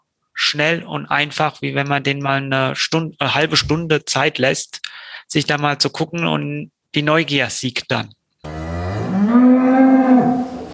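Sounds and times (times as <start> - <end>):
speech: 0.5 - 8.6
single long cow moo: 8.4 - 10.7.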